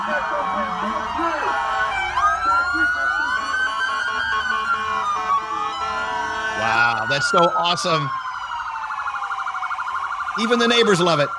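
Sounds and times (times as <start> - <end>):
first responder emergency vehicle sirens blaring outside hospital: 0.0 - 11.3
speech: 7.1 - 8.2, 10.4 - 11.3.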